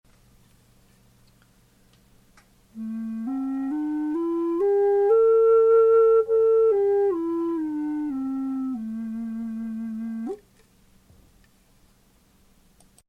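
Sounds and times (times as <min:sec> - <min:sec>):
native american flute in low A: 0:02.8 - 0:10.4.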